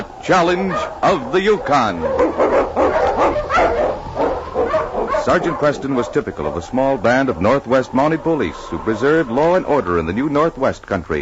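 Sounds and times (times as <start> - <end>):
speech: 0.2 - 2.5, 5.2 - 11.2
husky sled dog barking and yipping: 0.5 - 7.0.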